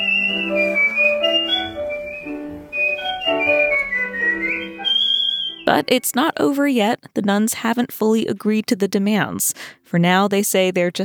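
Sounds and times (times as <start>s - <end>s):
person whistling a melody of sliding high notes: 0.0s - 5.9s
instrumental backing music: 0.0s - 6.2s
speech: 5.7s - 11.0s.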